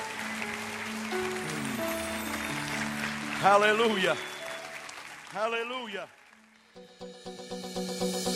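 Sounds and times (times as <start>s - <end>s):
large crowd clapping: 0.0s - 6.8s
sustained organ or keyboard chords: 1.2s - 2.6s, 6.8s - 8.3s
speech: 3.4s - 4.3s, 5.3s - 6.2s, 6.8s - 7.8s.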